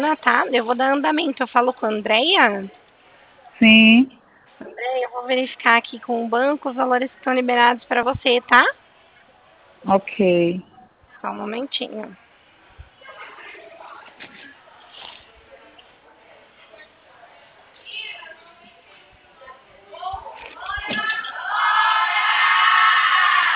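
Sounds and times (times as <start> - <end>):
speech: 0.0 - 2.8, 3.6 - 8.8, 9.8 - 12.2
several voices shouting and whooping: 20.6 - 23.5.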